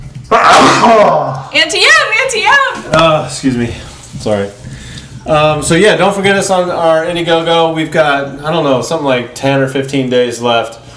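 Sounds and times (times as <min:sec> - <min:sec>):
loud sneeze: 0:00.3 - 0:01.5
speech: 0:00.8 - 0:10.9.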